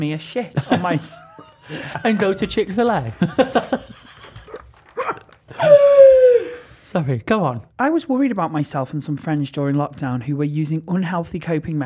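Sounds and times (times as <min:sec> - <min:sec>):
speech: 0:00.0 - 0:04.0, 0:06.9 - 0:11.8
laughter: 0:00.6 - 0:05.9
person imitating yapping dog barks: 0:05.0 - 0:06.6.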